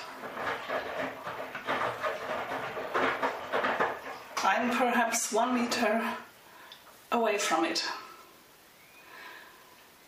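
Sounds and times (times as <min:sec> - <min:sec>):
front-loading washing machine drum turning with laundry inside: 0:00.0 - 0:06.0
speech: 0:04.6 - 0:06.3, 0:07.1 - 0:08.0.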